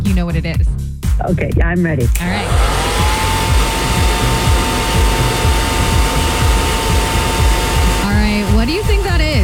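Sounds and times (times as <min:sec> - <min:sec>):
speech: 0:00.2 - 0:02.8
hair blow dryer running: 0:02.2 - 0:09.4.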